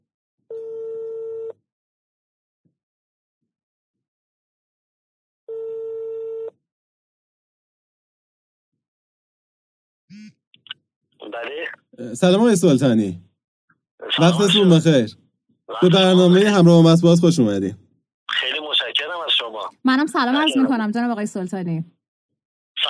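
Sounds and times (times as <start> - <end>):
long steady telephone ringback tones: 0.5 - 1.5
speech: 10.2 - 13.3, 14.0 - 17.8, 19.8 - 22.0
voice answering a phone call: 11.2 - 11.9, 18.3 - 20.8.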